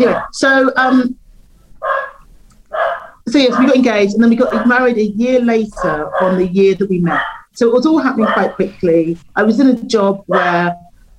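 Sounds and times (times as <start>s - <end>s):
speech: 0.0s - 1.2s, 3.3s - 10.8s
quiet low hum: 0.0s - 11.1s
dog barking: 1.8s - 3.8s, 4.4s - 4.9s, 5.7s - 8.7s, 10.3s - 10.7s.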